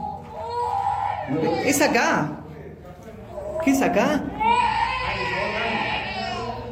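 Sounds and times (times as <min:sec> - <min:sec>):
child crying in an abandoned sanatorium: 0:00.0 - 0:01.7, 0:03.3 - 0:06.6
speech: 0:01.3 - 0:02.4, 0:03.6 - 0:04.7.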